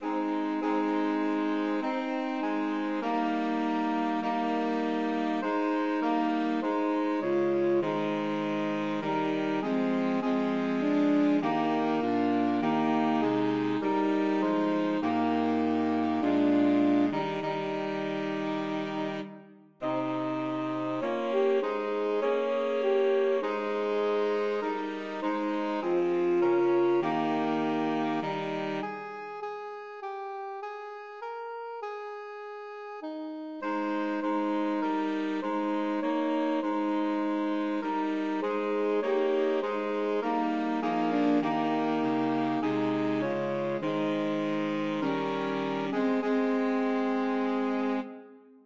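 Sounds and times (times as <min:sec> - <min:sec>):
saxophone melody: 0:00.0 - 0:32.2, 0:32.9 - 0:48.6.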